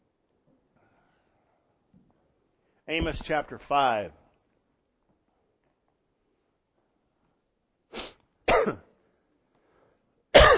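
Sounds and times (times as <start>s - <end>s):
speech: 2.9s - 4.2s
person coughing with a frog in their throat: 8.5s - 8.9s, 10.3s - 10.5s
rough throat-clearing hack: 8.5s - 8.9s.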